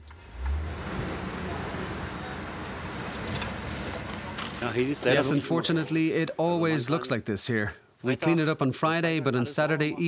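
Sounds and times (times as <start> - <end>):
broad road rumble: 0.0 - 5.3
vehicle engine humming while turning onto street: 0.0 - 5.3
speech: 4.7 - 10.0.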